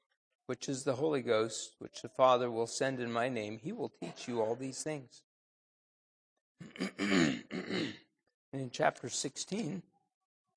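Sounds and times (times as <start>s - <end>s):
speech: 0.5s - 5.3s, 6.6s - 9.9s
man clearing his throat: 6.6s - 8.0s.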